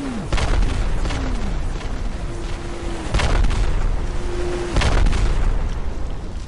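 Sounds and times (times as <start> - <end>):
continuous roaring rumble: 0.0 - 6.4
rocket explosions between a farm and a village: 0.2 - 6.4
whistles sliding downward in pitch: 2.2 - 5.3.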